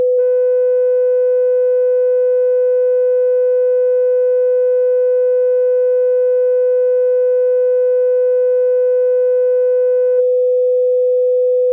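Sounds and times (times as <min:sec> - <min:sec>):
typical amplifier distortion: 0:00.1 - 0:11.6.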